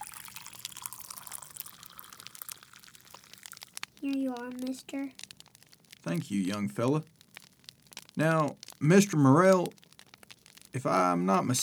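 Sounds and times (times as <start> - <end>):
hot coffee pouring into a cup: 0.0 - 6.0
speech: 4.0 - 5.2, 6.0 - 7.2, 8.2 - 9.8, 10.8 - 11.6.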